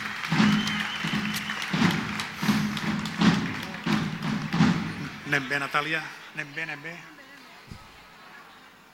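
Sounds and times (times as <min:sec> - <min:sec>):
steady regular drumbeats: 0:00.0 - 0:05.4
audience applause crackling: 0:00.0 - 0:06.2
noisy crowd: 0:00.0 - 0:08.9
speech: 0:05.3 - 0:07.2.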